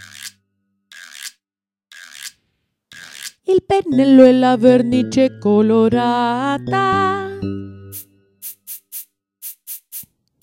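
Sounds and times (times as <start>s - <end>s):
hand saw sawing: 0.0s - 3.4s
speech: 3.4s - 7.8s.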